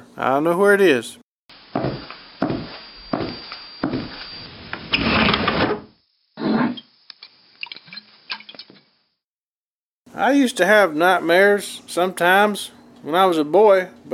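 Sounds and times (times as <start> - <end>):
speech: 0.2 - 1.2, 10.2 - 14.1
wooden desk drawer scraping and rattling open: 4.9 - 6.8.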